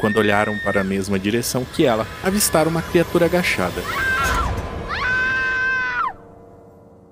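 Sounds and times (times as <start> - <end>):
speech: 0.0 - 4.4
girl screaming in fright: 3.8 - 6.2.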